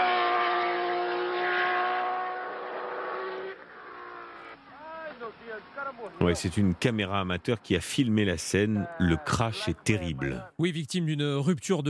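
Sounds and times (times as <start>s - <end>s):
Formula One race car engine roaring, accelerating during tyre testing on a circuit: 0.0s - 5.8s
speech: 5.6s - 11.8s.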